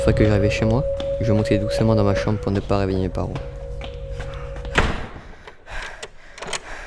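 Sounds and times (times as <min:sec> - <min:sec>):
low steady hum: 0:00.0 - 0:05.2
speech: 0:00.1 - 0:03.6
door shutting with a solid thud: 0:03.9 - 0:05.3.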